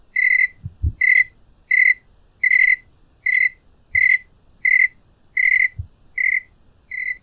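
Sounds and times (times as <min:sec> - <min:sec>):
single cricket giving ringing chirps: 0:00.1 - 0:07.2.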